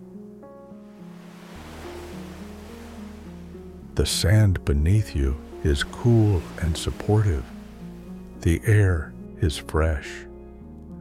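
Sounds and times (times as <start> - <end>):
ocean waves rolling onto a shoreline: 0.8 - 8.4
speech: 4.0 - 7.5, 8.4 - 10.3.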